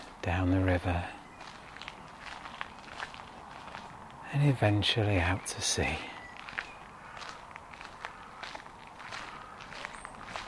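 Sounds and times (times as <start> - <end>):
speech: 0.2 - 1.2, 4.3 - 6.1
soft scuffing footsteps walking: 1.3 - 4.3, 6.2 - 10.4.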